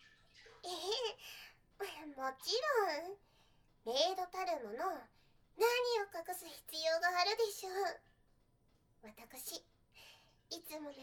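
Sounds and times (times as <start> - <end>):
water splashing in a bath while washing someone's back: 0.0 - 1.8
speech: 2.1 - 8.1, 9.0 - 9.7, 10.5 - 11.0.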